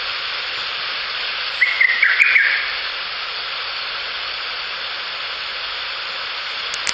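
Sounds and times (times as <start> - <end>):
steady hiss: 0.0 - 6.9
lesser cuckoo short rapid staccato whistled phrase: 1.6 - 2.8.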